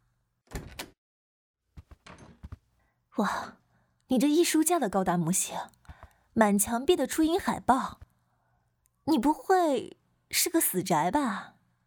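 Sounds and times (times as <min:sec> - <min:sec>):
door handle and latch rattling: 0:00.5 - 0:01.0, 0:02.0 - 0:02.6
door knocking and scraping as it swings open: 0:01.8 - 0:02.7
speech: 0:03.2 - 0:05.8, 0:06.4 - 0:08.0, 0:09.1 - 0:11.6.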